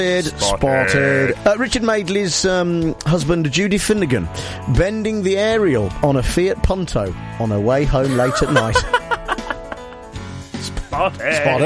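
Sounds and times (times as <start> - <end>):
speech: 0.0 - 9.0, 11.0 - 11.6
sheep bleating: 0.4 - 1.4, 11.0 - 11.6
laughter: 8.0 - 10.1.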